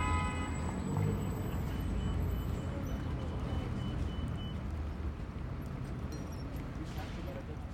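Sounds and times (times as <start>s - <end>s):
dense city traffic of cars, trucks and buses at an intersection: 0.0s - 7.7s
faint high beeps: 1.1s - 4.7s.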